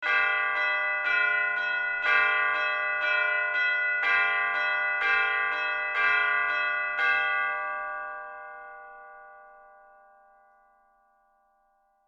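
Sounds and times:
church bells ringing: 0:00.0 - 0:12.0.

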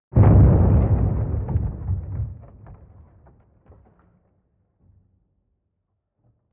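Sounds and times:
low wood impact explosion sweetener: 0:00.2 - 0:05.1.

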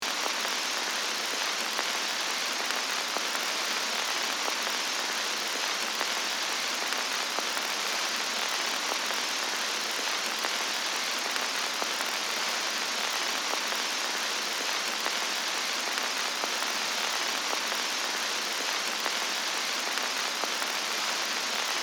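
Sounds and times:
vintage crackle of old film reel projector: 0:00.0 - 0:21.8.

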